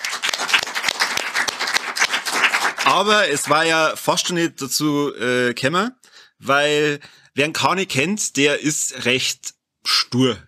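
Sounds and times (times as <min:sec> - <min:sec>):
applause from a small group: 0:00.0 - 0:03.9
speech: 0:02.8 - 0:10.4.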